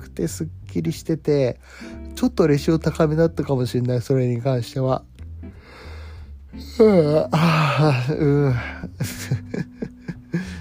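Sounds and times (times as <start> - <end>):
speech: 0.2 - 5.9, 6.5 - 9.7
drawn-out voiced yawn: 6.6 - 8.9.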